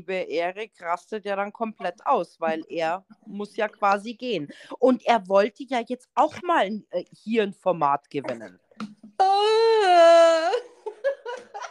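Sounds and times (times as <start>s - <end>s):
speech: 0.0s - 10.7s
person forced crying with choppy sobs: 9.2s - 11.7s.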